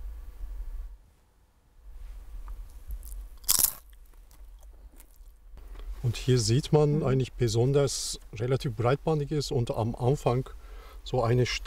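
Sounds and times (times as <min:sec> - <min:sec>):
teeth biting into a potato chip: 0:02.9 - 0:05.4
speech: 0:06.0 - 0:11.6.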